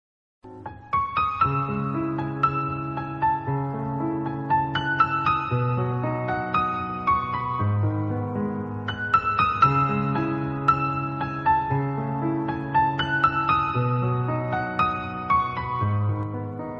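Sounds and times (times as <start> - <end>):
piano instrumental: 0.4 - 16.7.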